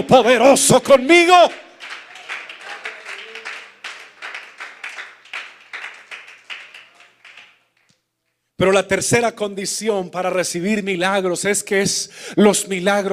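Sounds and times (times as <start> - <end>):
speech: 0.0 - 1.6, 8.6 - 13.1
crowd applauding: 1.2 - 8.0.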